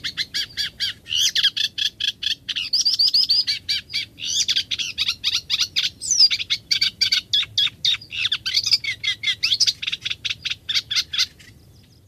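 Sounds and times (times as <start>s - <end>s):
Eurasian reed warbler song: 0.0s - 12.0s.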